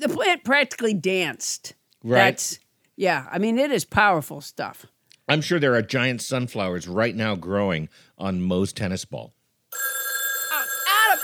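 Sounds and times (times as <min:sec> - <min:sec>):
speech: 0:00.0 - 0:10.0
telephone ringing with a steady electronic tone: 0:09.7 - 0:11.2.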